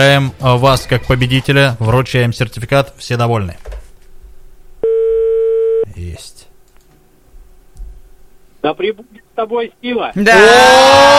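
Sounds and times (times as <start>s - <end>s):
speech: 0.0s - 3.7s, 8.6s - 11.1s
telephone line beep during a live on-air call: 4.8s - 5.9s.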